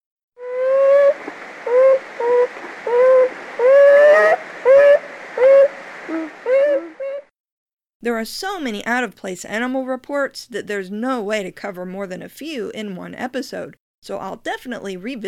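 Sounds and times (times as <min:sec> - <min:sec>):
beaver whining calls: 0:00.4 - 0:07.3
speech: 0:08.1 - 0:15.2.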